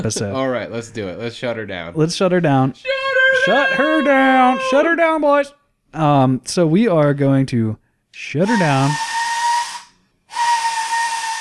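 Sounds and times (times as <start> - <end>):
speech: 0.0 - 9.1
factory shift whistle blowing with breathy steam roar: 2.9 - 5.0, 8.4 - 11.3.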